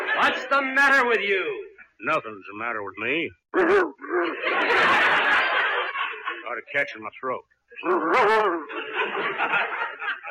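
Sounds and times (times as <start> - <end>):
laughter: 0.0 - 0.8, 3.6 - 6.9, 7.8 - 10.2
speech: 0.2 - 5.4, 6.5 - 9.7
man vocally imitating a dog: 3.5 - 4.3, 7.8 - 8.7.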